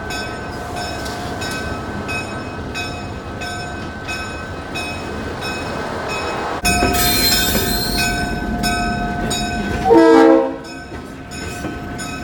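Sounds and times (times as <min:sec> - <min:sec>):
Santa Cruz Beach Train rumbling past: 0:00.0 - 0:12.2
loud high train wheel screech: 0:06.7 - 0:08.3
metallic hiss and squeal: 0:06.7 - 0:08.3.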